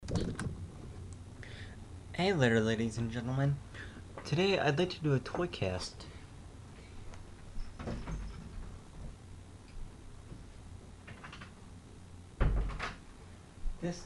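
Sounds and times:
speech: 2.2 - 6.1, 13.8 - 14.0
door shutting with a solid thump: 12.4 - 13.0.

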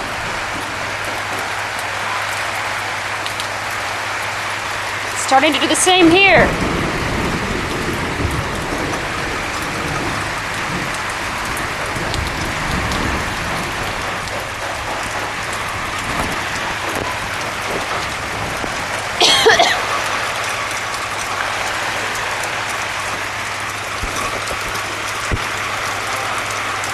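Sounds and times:
heavy rain falling at the front of a house: 0.0 - 26.9
speech: 5.3 - 6.6.

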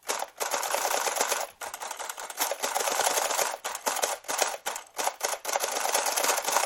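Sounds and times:
old Art Deco typewriter-like printing machine printing: 0.0 - 6.6.

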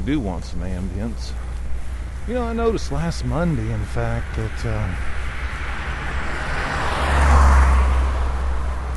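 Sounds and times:
speech: 0.0 - 1.5, 2.3 - 5.2
car driving past on a road: 3.8 - 8.9.

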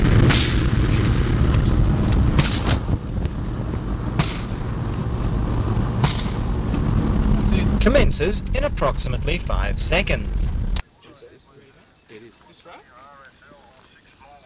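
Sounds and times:
TV picture tube being smashed with sharp loud bangs and cracks: 0.0 - 5.3, 5.9 - 7.0
steady low rumble: 0.0 - 10.8
speech: 7.9 - 10.5.

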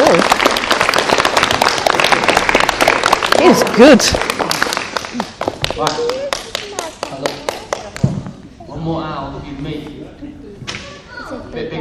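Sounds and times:
audience clapping during a live owl presentation: 0.0 - 8.2
speech: 3.6 - 4.3, 5.8 - 6.2.

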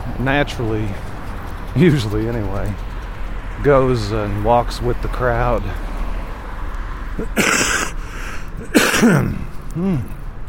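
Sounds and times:
speech: 0.2 - 1.1, 1.8 - 2.9, 3.6 - 5.9, 7.2 - 7.6, 9.0 - 10.2
person coughing: 7.2 - 8.0, 8.6 - 10.1.

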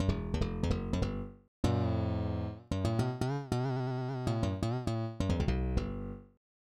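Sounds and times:
broken slap bass: 0.0 - 3.2, 4.4 - 6.2.

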